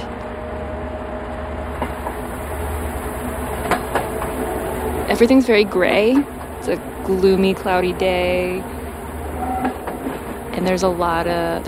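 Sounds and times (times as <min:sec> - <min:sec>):
train rumbling along the rails: 0:00.0 - 0:11.6
train wheels clicking and clanking as the train gets moving: 0:03.5 - 0:11.6
speech: 0:05.2 - 0:08.8, 0:10.6 - 0:11.6.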